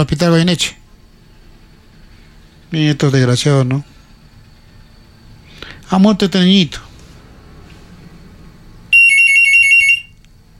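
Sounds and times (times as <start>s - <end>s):
speech: 0.0s - 0.8s, 2.7s - 3.9s, 5.9s - 6.8s
telephone ringing with an electronic trill: 8.9s - 10.2s.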